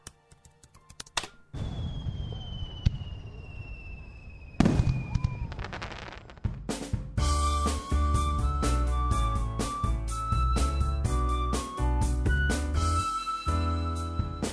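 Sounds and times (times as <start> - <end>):
fireworks whistling rise: 1.5 - 6.6, 7.2 - 14.5
fireworks booming explosions: 1.5 - 7.7
fireworks bursting in a crackling volley: 1.6 - 8.4.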